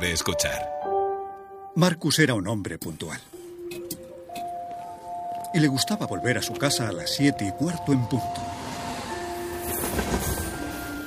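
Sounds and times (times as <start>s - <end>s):
speech: 0.0s - 0.8s, 1.8s - 4.0s, 5.5s - 8.7s
commuter train passing: 6.7s - 11.0s.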